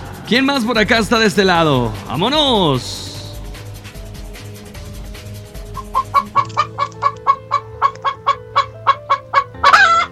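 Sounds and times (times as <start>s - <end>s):
speech: 0.3s - 3.1s
chickens clucking: 5.7s - 10.0s.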